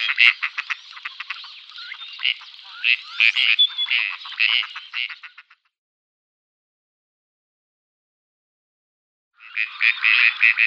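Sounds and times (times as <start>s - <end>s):
gadwall calling in nasal bursts during display: 0.0s - 5.5s, 9.4s - 10.6s
speech: 0.1s - 0.7s, 2.2s - 5.3s, 9.6s - 10.6s.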